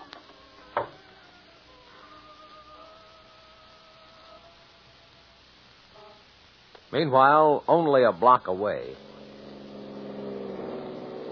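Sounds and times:
speech: 0:06.9 - 0:09.1
police car engine slowing down: 0:08.9 - 0:11.3.

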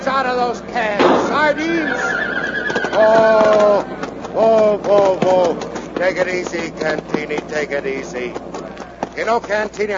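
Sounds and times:
speech: 0:00.0 - 0:08.6, 0:09.2 - 0:09.9
hoof clops: 0:01.3 - 0:09.9
horse neighing: 0:01.6 - 0:03.6.

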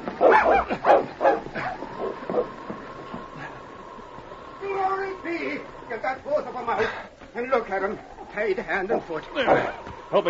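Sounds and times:
big dog barking and yipping: 0:00.2 - 0:02.5
speech: 0:06.1 - 0:10.2.

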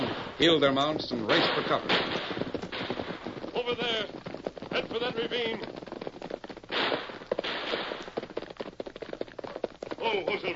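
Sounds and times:
gunfire in a gunfight: 0:00.0 - 0:05.8, 0:06.6 - 0:08.4
speech: 0:00.4 - 0:02.4, 0:03.6 - 0:05.8, 0:10.1 - 0:10.5.

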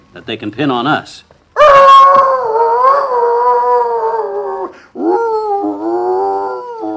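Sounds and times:
speech: 0:00.1 - 0:01.8
dog howling in long wavering tuneful notes: 0:01.6 - 0:06.9.

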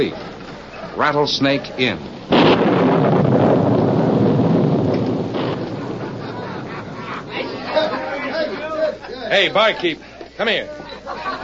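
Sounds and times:
speech: 0:00.0 - 0:00.3, 0:01.0 - 0:02.4, 0:09.3 - 0:10.9
scattered crackles: 0:00.0 - 0:08.5
softer steady storm rumble: 0:02.0 - 0:08.0
gusting wind: 0:02.1 - 0:08.0
heavy roll of thunder: 0:02.1 - 0:08.1
laughter: 0:05.8 - 0:11.4.

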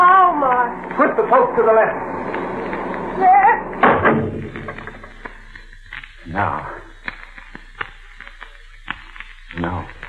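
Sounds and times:
speech: 0:01.2 - 0:02.4, 0:03.2 - 0:04.6, 0:06.3 - 0:06.8
heavy wooden trap door thudding shut: 0:03.8 - 0:05.0.

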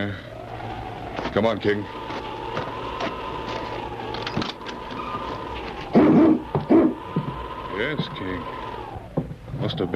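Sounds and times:
speech: 0:00.0 - 0:00.3, 0:01.3 - 0:02.1, 0:07.8 - 0:08.6, 0:09.6 - 0:09.9
steady hum: 0:00.0 - 0:09.9
husky dog barking: 0:05.9 - 0:07.0.

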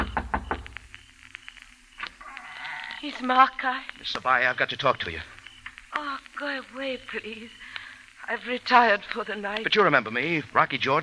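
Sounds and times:
knocking on the door of a house in the hills: 0:00.0 - 0:00.7
speech: 0:03.0 - 0:05.4, 0:06.0 - 0:07.7, 0:08.3 - 0:11.0.

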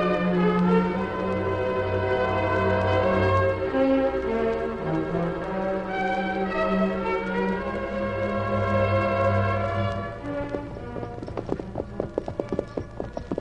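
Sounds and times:
hooves of two horses clip-clopping as riders ride off: 0:00.0 - 0:13.3
sustained music: 0:00.0 - 0:13.3.

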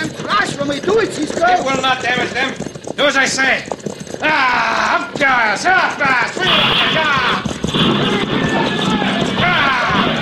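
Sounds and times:
team of horses running hard, hooves clattering: 0:00.0 - 0:10.1
speech: 0:00.7 - 0:08.8
raised voices and shouts: 0:04.2 - 0:10.1.

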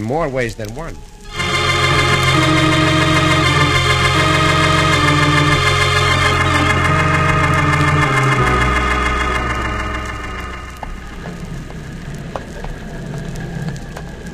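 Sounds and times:
speech: 0:00.0 - 0:01.1
boat engine droning: 0:01.3 - 0:12.1.

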